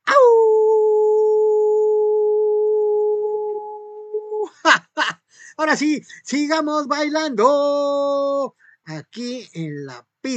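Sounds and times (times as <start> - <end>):
person imitating a howl: 0.0 - 4.6
speech: 5.6 - 10.3.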